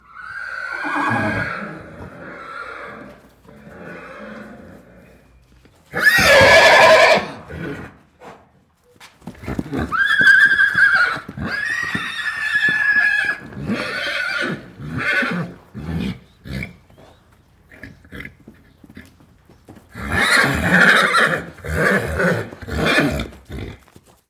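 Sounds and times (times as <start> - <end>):
Arabian horse neighing loudly: 0.0 - 4.8, 5.9 - 8.0, 9.5 - 16.7, 20.0 - 23.4.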